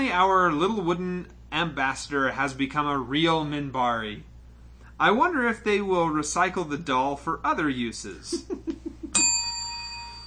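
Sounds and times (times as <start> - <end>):
speech: 0.1 - 4.3, 5.0 - 8.9
laughter: 8.3 - 9.2
bright metallic bell strike: 9.1 - 10.2.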